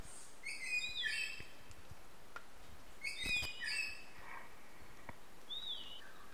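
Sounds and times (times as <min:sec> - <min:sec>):
faint noise: 0:00.0 - 0:06.3
Belford's melidectes giving harsh, rasping and whistled notes: 0:00.4 - 0:01.4, 0:03.0 - 0:04.1, 0:05.5 - 0:06.3.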